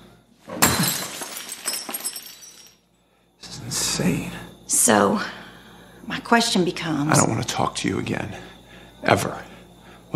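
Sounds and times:
thrown glass smashing on a hard floor: 0.5s - 2.8s
speech: 4.0s - 5.4s, 6.3s - 9.5s.

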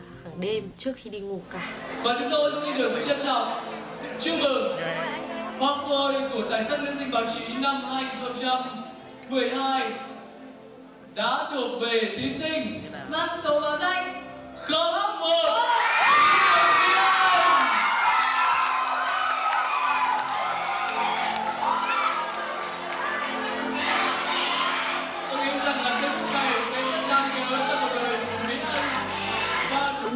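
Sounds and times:
speech: 0.4s - 10.1s, 11.2s - 15.7s
large crowd cheering and shouting at a pageant winner announcement: 15.4s - 30.1s.

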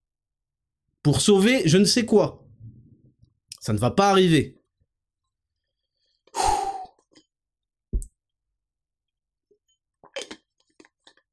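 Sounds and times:
speech: 1.0s - 2.4s, 3.6s - 4.6s
small sip of a drink: 6.1s - 7.4s, 10.0s - 11.3s.

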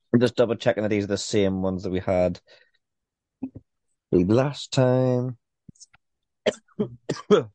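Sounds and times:
speech: 0.2s - 2.6s, 3.4s - 5.4s, 6.4s - 7.5s
person clearing throat: 6.5s - 7.5s
person coughing: 6.5s - 7.5s.

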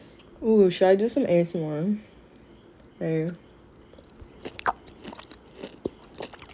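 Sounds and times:
speech: 0.4s - 2.1s, 3.0s - 3.4s
chewing of a gummy candy: 3.3s - 6.5s.

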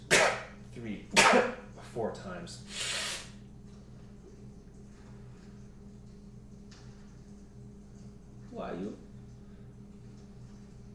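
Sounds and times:
toddler sneezing: 0.1s - 0.5s, 1.1s - 1.6s, 2.7s - 3.4s
speech: 1.3s - 2.9s.

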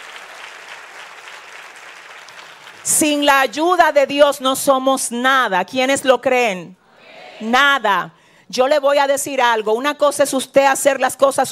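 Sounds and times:
audience applauding loudly: 0.0s - 3.2s
speech: 2.9s - 6.8s, 7.4s - 11.5s.

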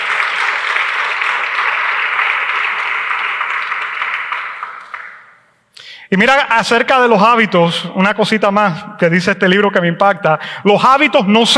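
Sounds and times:
crowd applauding: 0.0s - 5.4s
speech: 6.1s - 11.5s.

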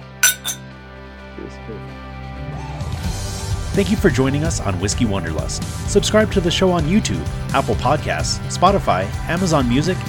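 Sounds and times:
glasses clinking in a toast: 0.0s - 0.6s
speech: 1.4s - 10.0s.

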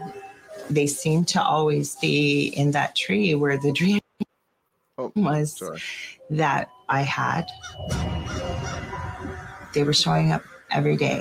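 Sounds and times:
speech: 0.7s - 4.0s, 5.2s - 8.1s, 9.8s - 11.1s
ravens calling with harsh croaking honks: 7.5s - 11.1s.

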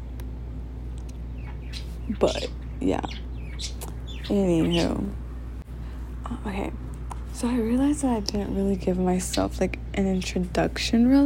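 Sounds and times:
pet bird chirping: 1.1s - 5.2s
speech: 1.7s - 5.2s, 6.3s - 11.2s.

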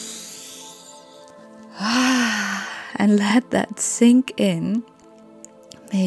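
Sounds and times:
person taking a deep breath: 0.0s - 3.0s
speech: 3.0s - 4.9s.

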